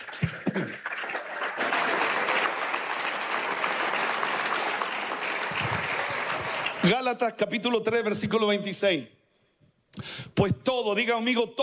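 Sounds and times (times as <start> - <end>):
audience applauding: 0.0 - 7.0
speech: 6.9 - 9.2, 10.4 - 11.6.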